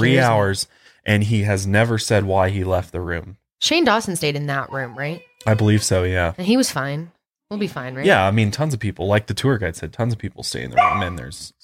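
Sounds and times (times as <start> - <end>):
speech: 0.0 - 11.6
puppy barking: 10.8 - 11.2.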